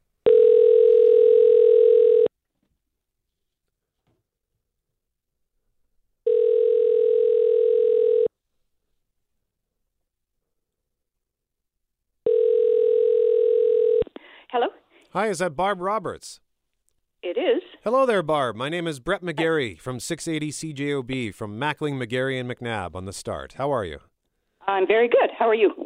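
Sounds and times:
telephone tone as a call is placed: 0.2 - 2.3, 6.3 - 8.3, 12.2 - 14.0
speech: 15.2 - 16.4, 17.3 - 24.1, 24.7 - 25.8.

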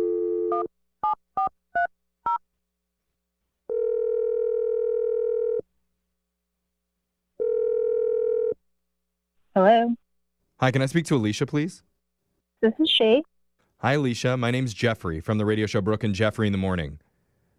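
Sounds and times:
speech: 0.6 - 1.2, 9.6 - 10.0, 10.6 - 11.9, 12.6 - 17.0
long steady telephone ringing tone: 3.7 - 5.6, 7.4 - 8.6.

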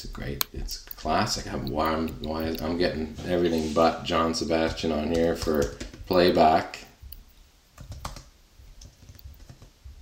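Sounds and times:
speech: 0.0 - 6.9
typing on a computer keyboard: 5.1 - 6.4, 7.8 - 9.8.

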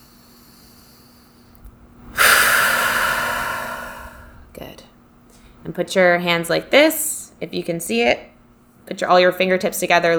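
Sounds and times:
deep breath taken during a relaxation exercise: 0.0 - 4.7
speech: 5.6 - 8.3, 8.9 - 10.1.

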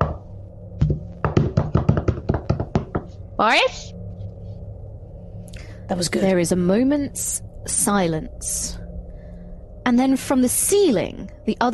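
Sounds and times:
sharp knocks on a hard surface: 0.8 - 3.1
speech: 3.4 - 4.0, 5.9 - 8.8, 9.8 - 11.7.

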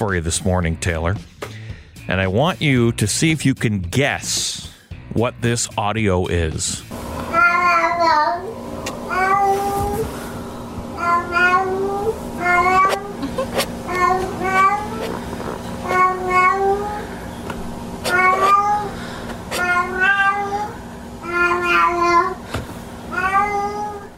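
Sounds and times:
speech: 0.0 - 7.4
steady hum: 6.7 - 24.1
cat meowing in plaintive cries: 7.3 - 8.4, 11.0 - 17.1, 18.0 - 18.9, 19.5 - 22.3, 23.1 - 24.1.

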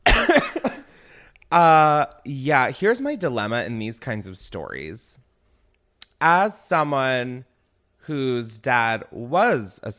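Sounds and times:
person coughing up mucus: 0.0 - 0.9
speech: 1.5 - 5.2, 6.2 - 9.9.

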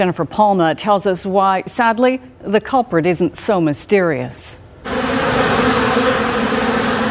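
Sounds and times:
speech: 0.0 - 5.1
many honeybees buzzing around their hive: 4.9 - 7.0.

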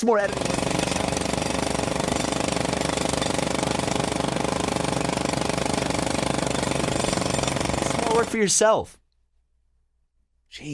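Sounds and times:
speech: 0.0 - 0.9, 8.2 - 9.0, 10.5 - 10.7
jackhammer pounding: 0.2 - 8.5.

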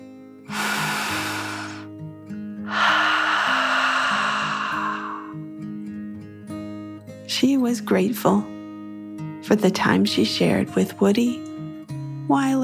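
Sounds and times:
slow deep breath in and out: 0.5 - 1.9, 2.6 - 5.4
speech: 7.4 - 8.5, 9.5 - 11.5, 12.3 - 12.6.

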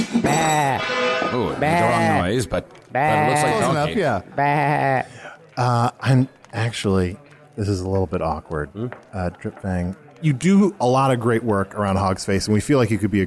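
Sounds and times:
person imitating a donkey bray: 0.2 - 0.9, 1.5 - 2.2, 2.9 - 3.7, 4.4 - 5.1
speech: 1.3 - 13.2.

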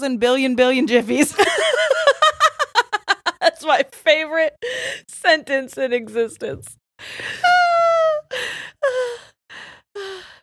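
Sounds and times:
speech: 0.0 - 2.2, 3.4 - 10.4
deliberate heavy breathing to prevent hiccups: 7.0 - 7.5, 8.3 - 10.4.

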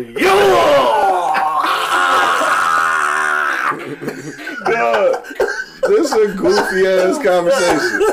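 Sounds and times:
speech: 0.0 - 0.7, 4.0 - 8.1
man screaming loudly: 0.2 - 3.8
laughter: 0.9 - 8.1.

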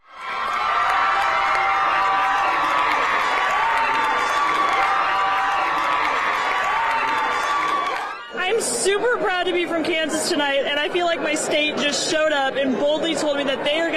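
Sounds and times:
crowd cheering in celebration: 0.0 - 9.2
speech: 9.1 - 13.9.

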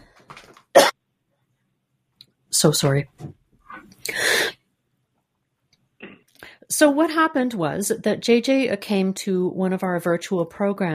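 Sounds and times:
person coughing: 0.8 - 1.0
speech: 2.6 - 3.4, 6.8 - 10.9.

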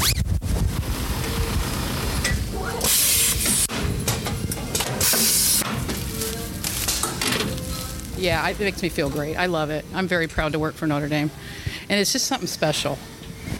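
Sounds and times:
low mechanical rumble: 0.0 - 11.9
steam venting bursts from pressing equipment: 0.6 - 3.8
steam tunnel pressing graduation gowns hissing: 1.9 - 3.8, 5.0 - 5.6
speech: 8.2 - 13.1.

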